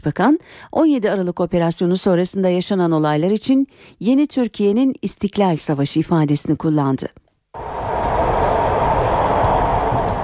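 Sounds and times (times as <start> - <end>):
speech: 0.0 - 7.8
metro train running on rails on the Sincan–Batıkent line in Turkey: 7.6 - 10.2.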